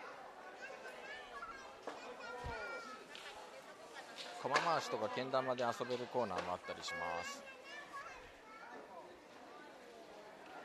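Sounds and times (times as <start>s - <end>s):
children playing ring toss and arrow-throwing games at festival game booths: 0.0s - 3.2s, 5.8s - 8.9s
steady crowd murmur: 0.0s - 10.6s
speech: 4.4s - 7.6s.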